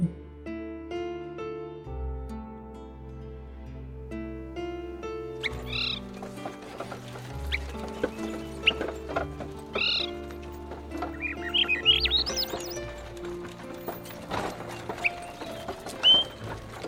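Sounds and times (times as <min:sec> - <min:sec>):
soft sustained instrumental music: 0:00.0 - 0:16.8
birds chirping in a summer forest: 0:04.7 - 0:16.8.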